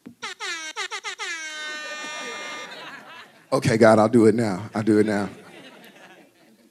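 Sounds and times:
loud air horn alarm blaring: 0.2 - 2.7
laughter: 1.2 - 3.8, 4.8 - 6.6
speech: 3.5 - 5.4.

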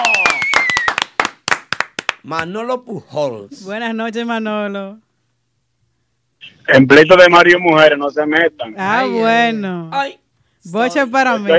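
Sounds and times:
high whistling tone: 0.0 - 1.0
hands clapping: 0.0 - 2.3
speech: 2.2 - 5.1, 6.4 - 11.5.

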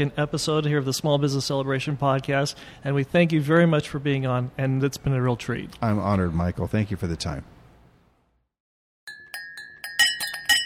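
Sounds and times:
speech: 0.0 - 7.5
glasses clinking: 9.1 - 10.6.

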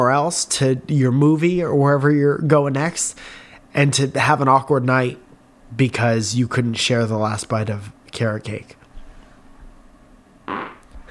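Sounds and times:
speech: 0.0 - 8.8
small fart: 10.4 - 11.0.

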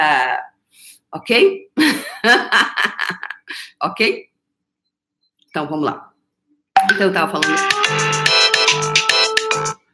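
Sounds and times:
speech: 0.0 - 4.3, 5.5 - 6.1, 6.9 - 8.9
laughter: 1.8 - 3.5
mobile phone ringtone with bright synthetic melody: 6.8 - 9.8.

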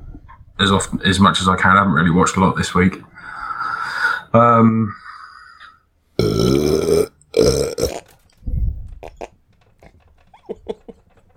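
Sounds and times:
speech: 0.6 - 3.1, 3.8 - 5.0
loud raspy burp: 6.2 - 8.2, 9.0 - 9.4.

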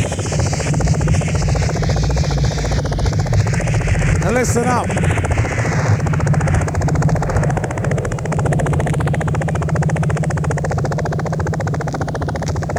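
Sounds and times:
helicopter rotor chopping: 0.1 - 12.7
helicopter high whine: 3.9 - 5.4
speech: 4.5 - 5.2.

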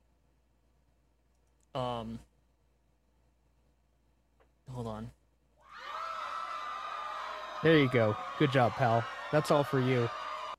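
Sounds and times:
speech: 1.8 - 2.3, 4.8 - 5.2, 7.6 - 10.2
crowd cheering and whooping: 5.6 - 10.5
high hollers from the crowd: 5.6 - 10.5.

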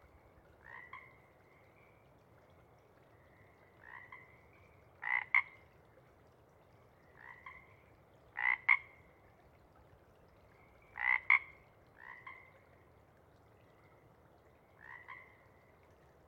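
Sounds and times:
sparse chorus of Pacific chorus frogs giving two-part croaks before dawn: 0.6 - 1.9, 3.2 - 5.6, 7.1 - 9.0, 10.8 - 12.6, 14.8 - 15.7.

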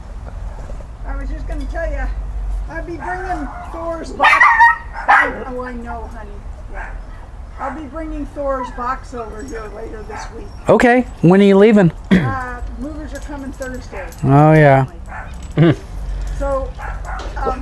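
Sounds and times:
speech: 1.2 - 7.0, 7.6 - 15.0, 15.6 - 15.8
dog barking: 3.0 - 5.7, 6.7 - 8.0, 8.6 - 11.2, 14.9 - 15.6, 16.6 - 17.6.

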